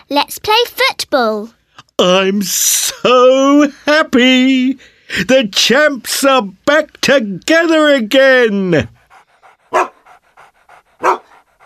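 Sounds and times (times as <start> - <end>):
speech: 0.1 - 9.0, 9.7 - 9.9
dog panting: 8.4 - 11.6
dog barking: 9.1 - 11.6.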